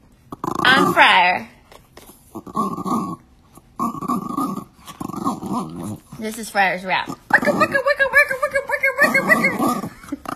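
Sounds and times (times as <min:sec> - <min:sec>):
dog growling and grunting: 0:00.3 - 0:01.4, 0:02.3 - 0:06.2, 0:06.8 - 0:10.3
speech: 0:00.8 - 0:01.5, 0:02.5 - 0:03.2, 0:05.6 - 0:09.9.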